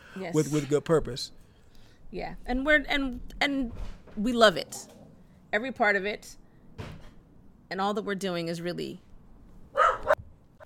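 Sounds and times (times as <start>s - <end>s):
speech: 0.2s - 1.4s, 2.1s - 6.9s, 7.7s - 9.1s
puppy barking: 9.7s - 10.6s.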